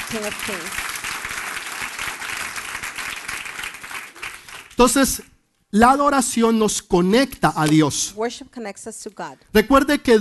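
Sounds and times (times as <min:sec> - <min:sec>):
large audience applauding at a church worship service: 0:00.0 - 0:04.9
speech: 0:00.1 - 0:01.0, 0:04.8 - 0:10.1.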